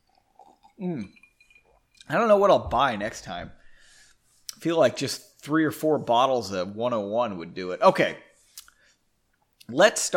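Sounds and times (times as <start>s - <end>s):
sipping a drink: 0.0s - 2.1s
speech: 0.8s - 1.2s, 2.1s - 3.6s, 4.6s - 8.3s, 9.7s - 10.1s.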